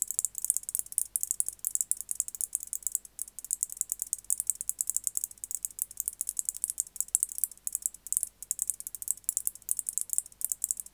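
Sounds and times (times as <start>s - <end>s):
white-faced bush-cricket Decticus albifrons song of sharp clicking ticks: 0.0s - 10.9s.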